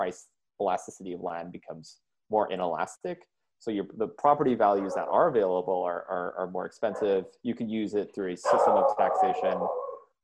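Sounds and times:
speech: 0:00.0 - 0:09.8
dogs barking and howling: 0:04.6 - 0:05.4, 0:06.8 - 0:07.3, 0:08.4 - 0:10.1.

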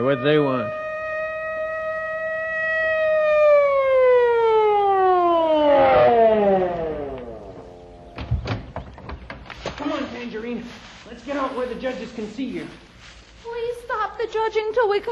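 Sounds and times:
speech: 0:00.0 - 0:00.8, 0:11.8 - 0:13.2, 0:14.4 - 0:15.1
police car siren wailing: 0:00.0 - 0:08.2.

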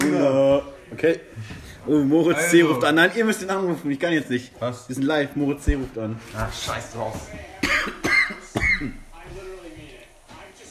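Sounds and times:
noise: 0:00.0 - 0:10.6
speech: 0:01.0 - 0:08.0
sharp coughs: 0:07.6 - 0:09.0.

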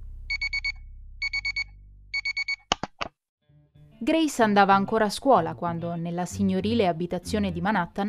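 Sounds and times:
low hum: 0:00.0 - 0:02.5
alarm clock beeping: 0:00.3 - 0:02.6
speech: 0:04.0 - 0:08.0.

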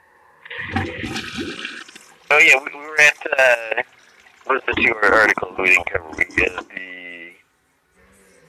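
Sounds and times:
toilet flushing: 0:00.5 - 0:02.3, 0:03.6 - 0:04.5
speech: 0:02.3 - 0:07.0.

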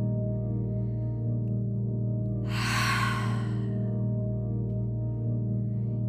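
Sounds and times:
soft steady musical drone: 0:00.0 - 0:06.0
forceful breathy open-mouth exhale: 0:02.5 - 0:03.7.

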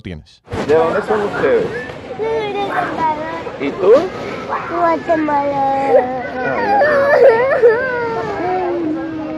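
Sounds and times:
speech: 0:00.0 - 0:07.9
children wailing and sobbing in a detention center: 0:04.3 - 0:09.3.

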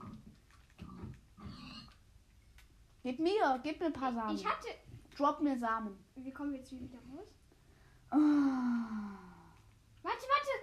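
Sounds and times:
video game pig oinking and grunting: 0:00.8 - 0:01.9
speech: 0:03.0 - 0:07.4, 0:08.1 - 0:08.7.

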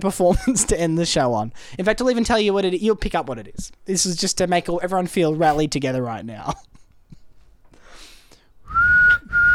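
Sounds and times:
speech: 0:00.0 - 0:06.7
person whistling a tune: 0:08.6 - 0:09.5.

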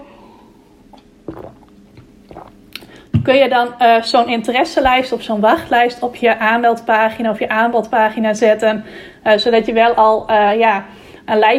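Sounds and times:
person sipping water: 0:00.8 - 0:03.1
soft wet mouth and swallowing sounds: 0:00.9 - 0:03.3
speech: 0:03.3 - 0:11.5.

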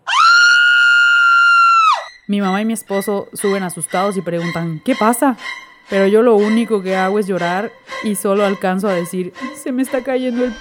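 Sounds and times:
woman screaming desperately: 0:00.0 - 0:02.2
speech: 0:02.3 - 0:10.5.

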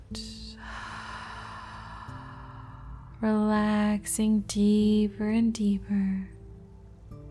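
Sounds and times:
quiet low sustained musical drone: 0:00.1 - 0:05.4
long slow exhale: 0:00.6 - 0:03.2
speech: 0:03.2 - 0:06.4.

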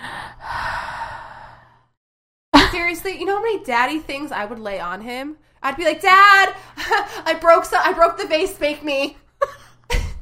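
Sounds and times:
person breathing heavily for effect: 0:00.0 - 0:02.0
speech: 0:02.9 - 0:09.2.

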